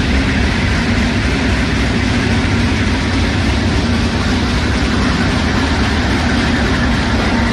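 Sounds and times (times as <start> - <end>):
high-speed inspection train pulling away from a station platform: 0.0 - 7.5.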